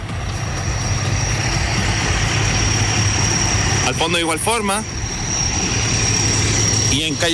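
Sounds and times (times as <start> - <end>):
faint high whine: 0.0 - 7.3
fire truck engines idling in a street: 0.0 - 7.3
speech: 3.9 - 5.0, 6.9 - 7.3.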